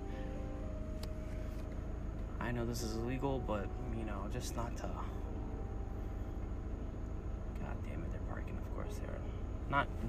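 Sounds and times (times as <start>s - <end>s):
car engine rumbling: 0.0s - 10.0s
speech: 2.5s - 5.2s, 7.8s - 10.0s.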